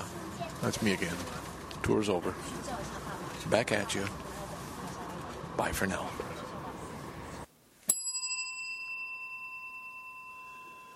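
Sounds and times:
noise: 0:00.0 - 0:07.8
speech: 0:00.6 - 0:04.2, 0:05.6 - 0:06.4
bicycle bell ringing with metallic shimmering tone: 0:07.9 - 0:10.9.

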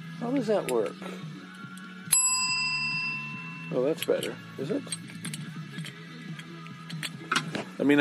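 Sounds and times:
speech: 0:00.2 - 0:01.4, 0:03.7 - 0:05.4, 0:07.8 - 0:08.0
bright bell ringing with a sustained metallic tone: 0:02.1 - 0:04.1.

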